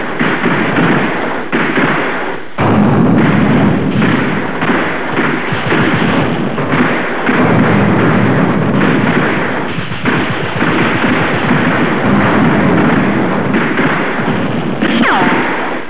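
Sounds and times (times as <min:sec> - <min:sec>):
gunfire in a gunbattle: 0:00.0 - 0:15.8
machine gun firing: 0:00.0 - 0:15.8.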